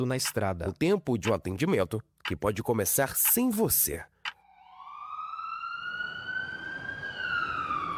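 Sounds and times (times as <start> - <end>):
speech: 0.0 - 4.1
ambulance siren wailing: 4.4 - 7.9.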